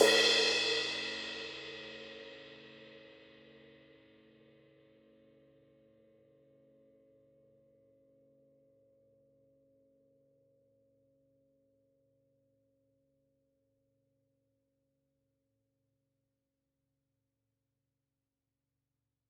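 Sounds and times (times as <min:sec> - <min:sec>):
china cymbal crash struck on the edge: 0:00.0 - 0:02.6.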